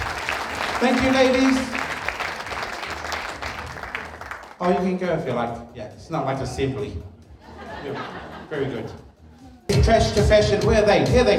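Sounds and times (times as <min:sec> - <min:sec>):
audience applause at a school trash-to-fashion show: 0:00.0 - 0:04.8
speech: 0:00.8 - 0:01.8, 0:04.6 - 0:07.1, 0:07.8 - 0:09.0, 0:09.7 - 0:11.3
laughter: 0:07.3 - 0:09.6.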